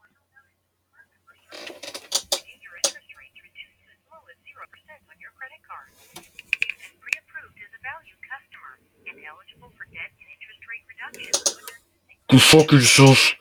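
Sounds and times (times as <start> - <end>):
thin band-limited voice talking over telephone line: 0.0 - 13.3
loud crackling bursts of handling noise: 1.5 - 3.0, 6.0 - 7.0, 11.2 - 11.8
speech: 12.3 - 13.3.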